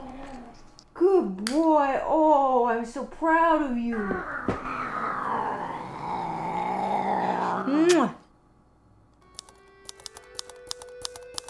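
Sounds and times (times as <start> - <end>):
male cat with a body microphone growling: 0.0 - 0.7, 3.9 - 8.0
speech: 1.5 - 4.7.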